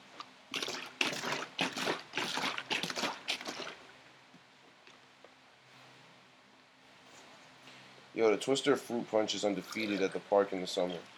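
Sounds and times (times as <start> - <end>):
lemonade sloshing in a bottle being shaken hard: 0.5 - 3.9, 9.4 - 11.1
speech: 8.2 - 11.1.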